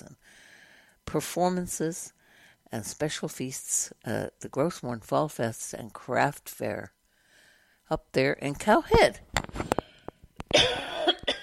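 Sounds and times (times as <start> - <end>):
speech: 1.1 - 7.0, 7.9 - 9.6
person with a slight morning cough coughing: 10.5 - 11.4.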